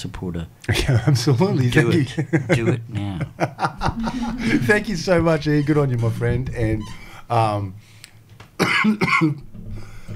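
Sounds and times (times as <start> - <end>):
speech: 0.0 - 8.0, 8.8 - 9.5
laughter: 1.8 - 5.4
person coughing: 8.6 - 9.4.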